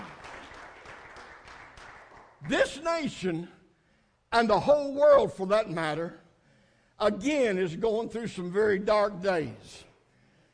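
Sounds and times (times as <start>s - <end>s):
crowd applauding in praise: 0.0s - 2.8s
speech: 2.4s - 3.6s, 4.3s - 6.2s, 7.0s - 9.9s.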